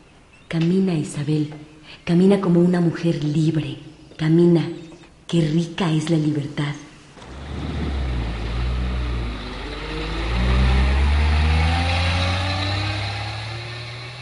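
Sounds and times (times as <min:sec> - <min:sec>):
speech: 0:00.5 - 0:06.8
heavy bus engine accelerating on a bus ride to Guadalajara: 0:07.2 - 0:14.2.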